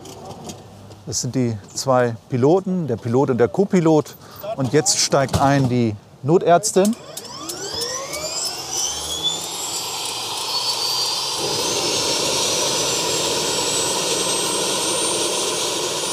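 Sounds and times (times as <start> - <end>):
speech: 1.1 - 7.1
emergency medical helicopter engine starting, rotors beginning to turn: 6.8 - 16.1.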